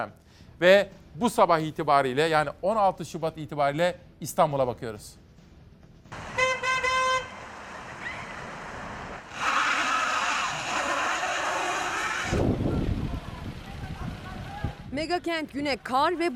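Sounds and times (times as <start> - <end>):
speech: 0.0 - 5.2, 15.0 - 16.3
rush-hour road traffic with engines rumbling: 5.5 - 16.3
car horn toot: 6.2 - 7.4
heavy vehicle surging: 6.2 - 14.9.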